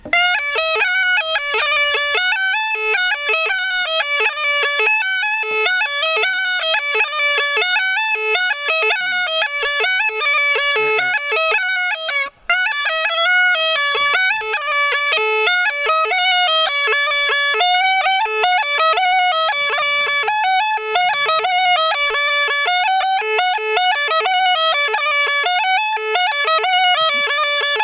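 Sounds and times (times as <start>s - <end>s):
small gajda bagpipe playing a Chetvorno line: 0.0s - 27.8s.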